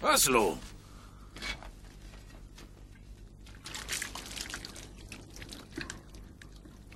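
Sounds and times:
speech: 0.0 - 0.7
water poured over hands for washing: 3.6 - 6.0.

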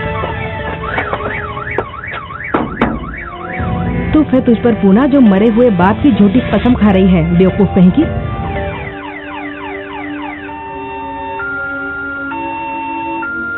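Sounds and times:
car alarm beeping and whooping: 0.1 - 4.5, 8.7 - 13.5
speech: 4.3 - 8.3.

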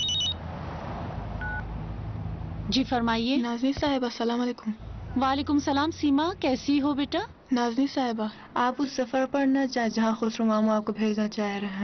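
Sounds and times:
telephone electronic ring tone: 0.0 - 0.4
low constant hum: 1.4 - 11.8
speech: 2.7 - 11.8.

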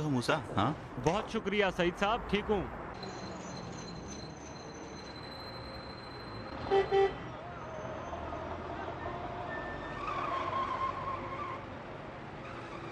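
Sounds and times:
speech: 0.0 - 3.2
broadband road noise: 0.0 - 12.8
car brakes squealing: 3.0 - 12.8
car horn toots: 6.6 - 7.2.

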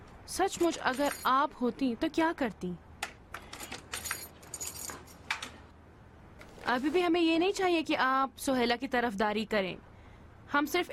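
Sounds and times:
speech: 0.3 - 2.8, 6.7 - 9.9, 10.5 - 10.9
metal keys jingling while opening a safe: 0.6 - 1.4, 3.5 - 5.3.

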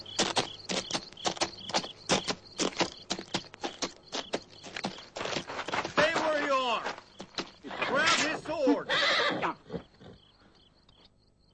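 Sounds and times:
horse hooves clip-clopping at a walk: 0.0 - 8.8
faint high-pitched chirping: 0.0 - 11.5.

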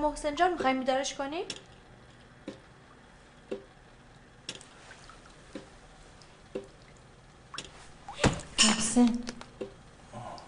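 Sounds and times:
speech: 0.0 - 1.7, 9.0 - 9.3
water dripping in a quiet room: 2.4 - 10.4.

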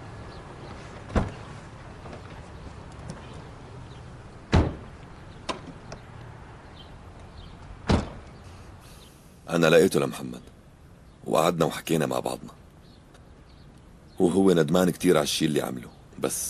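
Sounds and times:
car doors opening and shutting: 0.6 - 6.1, 7.4 - 8.4
speech: 9.5 - 10.5, 11.3 - 12.6, 14.2 - 16.4.

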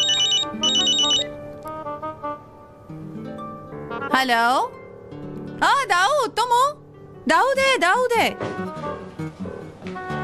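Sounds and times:
telephone ringing: 0.0 - 1.4
speech: 4.2 - 4.8, 5.6 - 9.1.

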